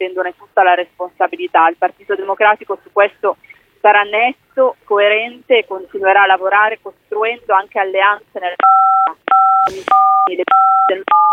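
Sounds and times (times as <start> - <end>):
speech: 0.0 - 11.3
telephone keypad dialing tones: 8.6 - 11.3.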